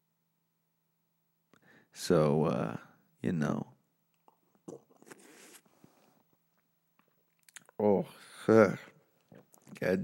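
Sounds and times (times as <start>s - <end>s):
speech: 1.9s - 3.7s, 7.8s - 8.8s, 9.8s - 10.0s
person taking a big gulp of a drink: 4.2s - 5.6s, 9.2s - 9.8s.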